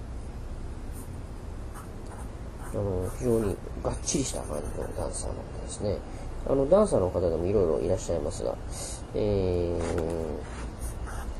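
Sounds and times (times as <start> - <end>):
pencil sketching a human figure on paper: 1.8 - 5.2, 10.4 - 11.3
speech: 2.8 - 10.6.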